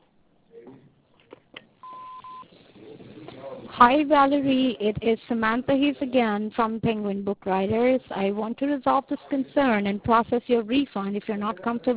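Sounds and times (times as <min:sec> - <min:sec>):
answering machine electronic beep: 0:01.8 - 0:02.4
speech: 0:03.8 - 0:11.9.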